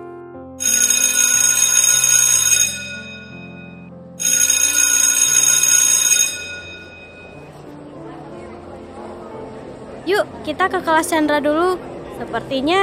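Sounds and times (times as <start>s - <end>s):
low stepping melody: 0.0s - 5.6s, 6.4s - 10.0s
electronic school bell ringing for the end of the school day: 0.6s - 7.6s
speech: 10.5s - 12.8s.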